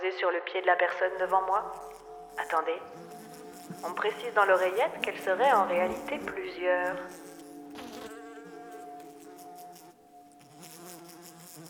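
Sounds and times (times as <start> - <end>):
speech: 0.1 - 7.3
houseflies buzzing: 0.6 - 11.6.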